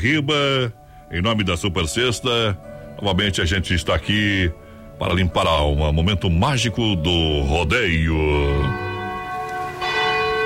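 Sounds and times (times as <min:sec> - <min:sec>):
speech: 0:00.0 - 0:08.9
large cathedral bell tolling: 0:07.3 - 0:10.4.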